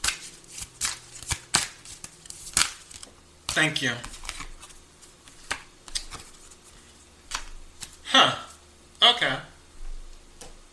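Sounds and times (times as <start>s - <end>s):
hand shuffling of a tarot-style card deck: 0.0s - 8.0s
speech: 3.6s - 4.2s, 8.2s - 8.4s.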